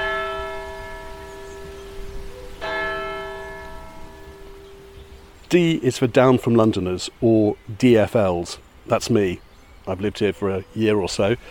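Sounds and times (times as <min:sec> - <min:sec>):
church bells ringing: 0:00.0 - 0:06.4
speech: 0:05.5 - 0:11.4.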